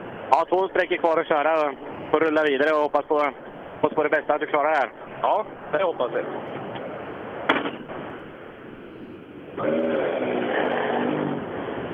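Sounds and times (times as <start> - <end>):
speech: 0.3 - 6.6, 9.6 - 10.1
rally car engine approaching the time control on a rally stage: 9.6 - 11.9.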